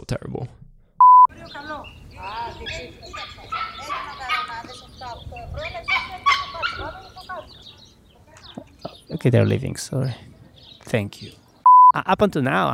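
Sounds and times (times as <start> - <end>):
speech: 0.1 - 0.4, 9.2 - 10.3, 10.9 - 11.4, 12.0 - 12.7
brief electronic beep: 1.0 - 1.3, 11.6 - 12.0
birds singing outdoors in warm weather: 1.3 - 11.7.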